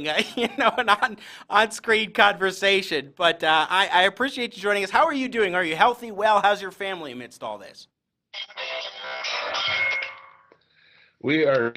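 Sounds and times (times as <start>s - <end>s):
laughter: 0.0s - 1.2s
speech: 0.0s - 9.0s, 11.2s - 11.7s
phone ringing with electronic warble: 8.4s - 10.5s.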